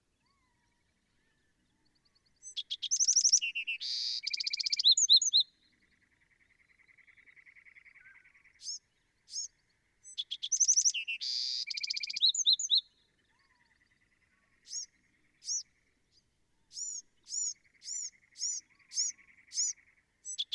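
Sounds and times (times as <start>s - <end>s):
Bewick's Wren singing: 2.4s - 5.4s, 8.6s - 12.8s, 14.6s - 15.8s, 16.7s - 20.5s.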